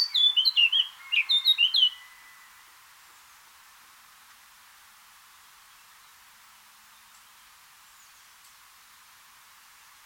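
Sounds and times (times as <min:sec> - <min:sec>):
Eurasian blackcap Sylvia atricapilla singing whistled notes: 0:00.0 - 0:02.0.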